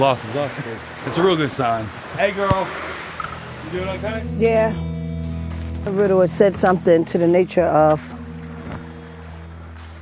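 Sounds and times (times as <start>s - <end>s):
speech: 0.0s - 3.0s, 3.6s - 4.9s, 5.8s - 8.2s
rushing water from a waterfall and creek: 0.0s - 4.0s.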